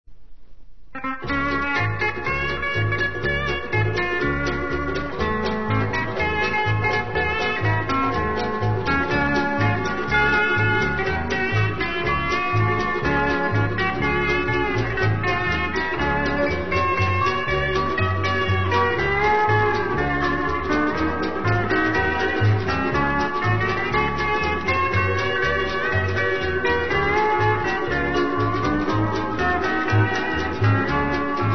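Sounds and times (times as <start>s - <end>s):
march music: 0.9s - 31.5s.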